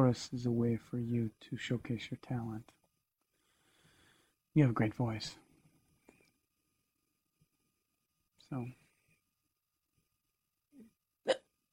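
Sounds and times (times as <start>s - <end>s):
speech: 0.0s - 2.8s, 4.5s - 5.4s, 8.5s - 8.8s
sharp hiccup: 11.3s - 11.5s.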